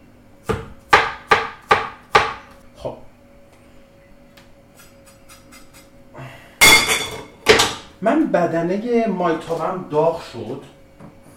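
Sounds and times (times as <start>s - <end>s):
knife finely chopping garlic for seasoning chicken: 0.4s - 2.4s
speech: 2.8s - 3.0s, 8.1s - 10.8s.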